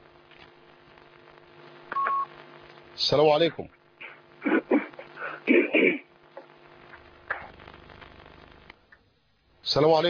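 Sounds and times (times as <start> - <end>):
low hiss: 0.0 - 10.0
touch-tone telephone beep as a call connects: 1.9 - 2.3
speech: 3.0 - 3.8, 9.7 - 10.0.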